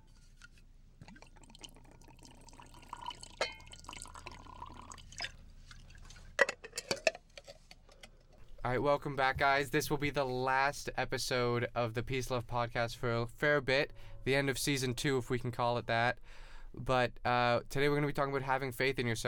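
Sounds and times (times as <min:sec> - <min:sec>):
mint tea pouring into a cup: 0:01.0 - 0:06.2
crockery clinking: 0:03.1 - 0:04.9
speech: 0:08.7 - 0:19.2.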